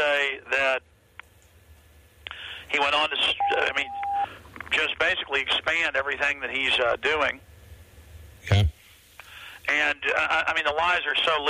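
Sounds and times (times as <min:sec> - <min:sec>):
speech: 0:02.7 - 0:04.0, 0:04.8 - 0:07.5, 0:08.4 - 0:08.8, 0:09.7 - 0:11.4
electronic beep on a phone line: 0:03.4 - 0:04.3.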